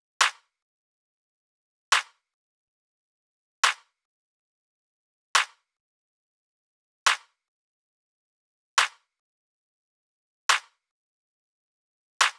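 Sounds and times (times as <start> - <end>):
dry clap loop: 1.9 - 2.2, 3.6 - 3.8, 5.4 - 5.6.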